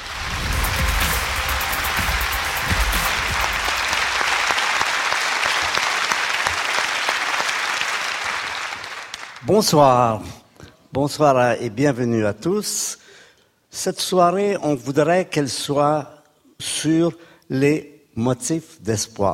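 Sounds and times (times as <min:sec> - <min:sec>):
audience applause: 0:00.0 - 0:09.5
speech: 0:09.5 - 0:13.1, 0:13.7 - 0:19.3.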